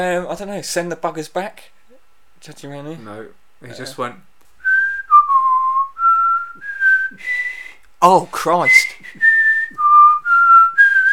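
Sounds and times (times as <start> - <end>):
speech: 0.0 - 1.8, 2.4 - 4.3, 7.1 - 7.4, 8.0 - 9.3
person whistling a national anthem melody: 4.6 - 7.8, 8.6 - 11.1.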